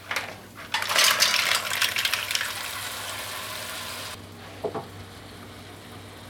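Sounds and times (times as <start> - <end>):
mussels sizzling in hot cast iron pot: 0.7 - 4.2.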